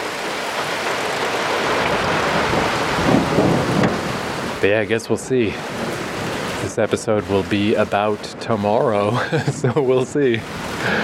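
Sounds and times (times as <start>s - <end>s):
steady heavy rain pouring down: 0.0s - 11.0s
low rumble of thunder: 0.6s - 11.0s
speech: 4.6s - 5.8s, 6.6s - 11.0s
laughter: 9.0s - 11.0s.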